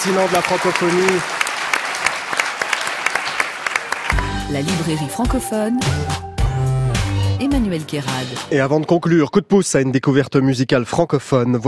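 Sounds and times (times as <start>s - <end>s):
speech: 0.0s - 1.4s, 4.5s - 6.2s, 7.4s - 11.6s
audience applause: 0.0s - 4.9s.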